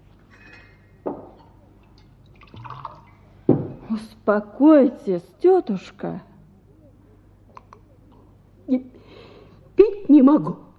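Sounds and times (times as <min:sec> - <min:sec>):
glass clinking: 0:00.3 - 0:01.6
water poured into a glass: 0:01.8 - 0:03.3
speech: 0:04.0 - 0:06.3, 0:10.3 - 0:10.6.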